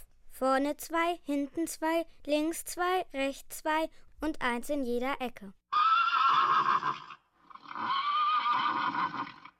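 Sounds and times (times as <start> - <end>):
speech: 0.4 - 5.6
horse neighing: 5.7 - 9.5.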